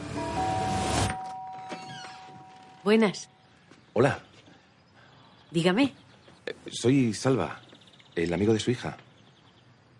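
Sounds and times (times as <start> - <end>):
electric doorbell buzzing: 0.1 - 2.8
speech: 2.8 - 3.4, 4.0 - 4.3, 5.5 - 7.6, 8.2 - 9.0.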